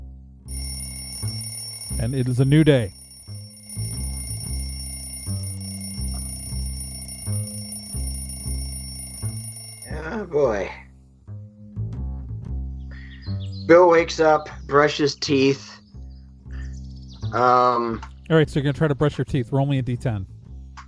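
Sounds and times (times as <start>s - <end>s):
alarm clocks ringing with bright electronic tones: 0.5s - 10.2s
speech: 2.0s - 3.0s, 13.7s - 15.7s, 17.3s - 20.3s.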